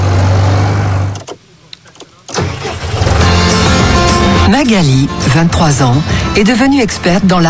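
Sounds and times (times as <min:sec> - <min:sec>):
tractor engine used in market gardening: 0:00.0 - 0:06.6
mechanical clicks: 0:01.2 - 0:02.5
speech: 0:04.5 - 0:07.4.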